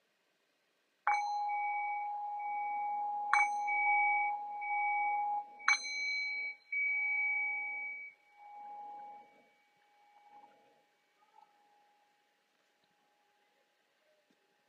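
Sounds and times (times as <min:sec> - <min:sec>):
meditation bell struck to end a guided meditation: 0:01.1 - 0:11.0.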